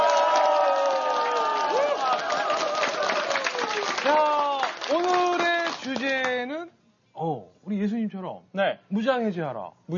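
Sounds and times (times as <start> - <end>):
studio audience cheering and applauding: 0.0 - 6.4
speech: 4.0 - 4.3, 7.2 - 9.9.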